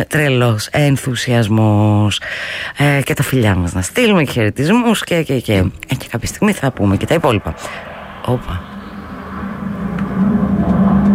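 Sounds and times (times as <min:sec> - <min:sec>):
speech: 0:00.0 - 0:08.7
airplane flying overhead: 0:05.2 - 0:11.1.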